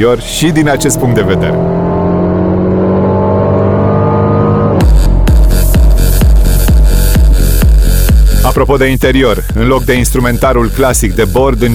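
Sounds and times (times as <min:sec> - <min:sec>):
speech: 0:00.0 - 0:01.8, 0:08.5 - 0:11.7
Mercedes CLA car engine revving with sport engine sound option: 0:00.0 - 0:11.7.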